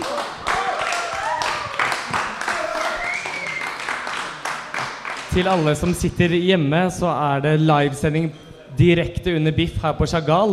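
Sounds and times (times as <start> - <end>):
audience applauding: 0.0 - 5.8
audience voices whooping: 0.5 - 3.8
speech: 5.4 - 10.5.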